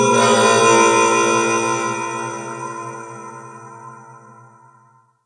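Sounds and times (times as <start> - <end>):
moving temple bells on a ship: 0.1 - 3.1.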